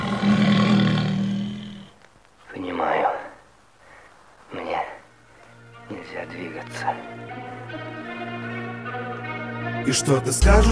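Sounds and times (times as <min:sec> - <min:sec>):
tiger roaring: 0:00.0 - 0:02.0
speech: 0:09.8 - 0:10.7.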